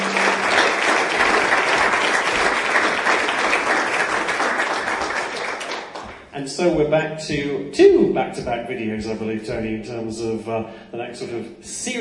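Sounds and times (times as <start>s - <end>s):
crowd applauding: 0.0s - 6.3s
speech: 6.6s - 11.9s.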